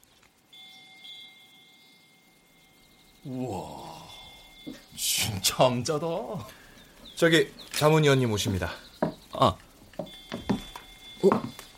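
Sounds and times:
wind chime ringing: 0.5s - 6.5s, 10.0s - 11.7s
speech: 3.2s - 3.9s, 4.6s - 6.6s, 7.2s - 8.8s, 9.4s - 9.6s.

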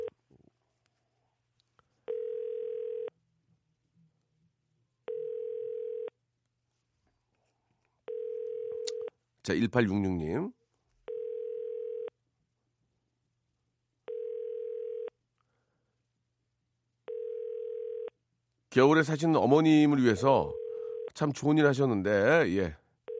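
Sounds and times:
telephone ringback tone while placing a call: 2.1s - 3.1s, 5.1s - 6.1s, 8.1s - 9.0s, 11.1s - 12.1s, 14.1s - 15.1s, 17.1s - 18.1s, 20.5s - 21.2s
speech: 9.5s - 10.6s, 18.8s - 20.6s, 21.2s - 22.8s.

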